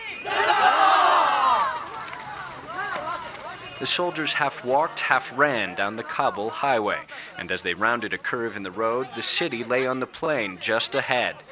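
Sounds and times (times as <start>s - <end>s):
large group of men cheering: 0.2s - 3.3s
speech: 3.8s - 11.5s.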